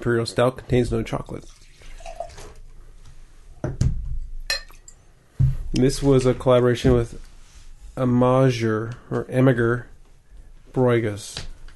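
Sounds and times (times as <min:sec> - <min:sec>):
speech: 0:00.0 - 0:01.6, 0:05.8 - 0:07.3, 0:08.0 - 0:09.9, 0:10.7 - 0:11.5
unfinished beer being poured out, splashing and gurgling: 0:01.4 - 0:02.6
light clink of glassware: 0:04.4 - 0:05.0.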